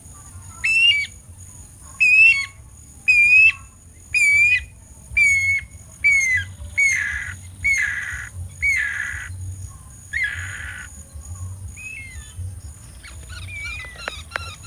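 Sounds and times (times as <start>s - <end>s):
faint bird whistles: 0.6s - 1.2s, 2.0s - 9.0s, 11.8s - 12.4s, 13.0s - 14.6s
bird chirps: 1.9s - 14.6s.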